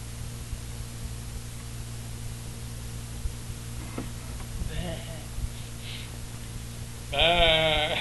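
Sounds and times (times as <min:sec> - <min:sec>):
low hum: 0:00.0 - 0:07.9
voice imitating a calf bawling as it is being weaned: 0:07.1 - 0:07.9.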